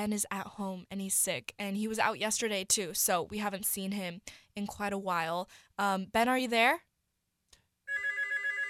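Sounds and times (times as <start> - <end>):
speech: 0.0 - 6.9
telephone ringing with electronic tone: 7.9 - 8.6.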